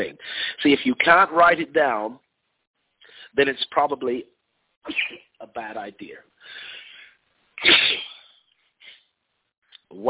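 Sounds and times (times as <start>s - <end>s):
speech: 0.0s - 2.2s, 3.3s - 6.7s, 7.6s - 7.9s
soft sharp inhale: 3.0s - 3.4s, 6.4s - 7.2s
person sneezing: 4.9s - 5.3s, 7.6s - 9.1s.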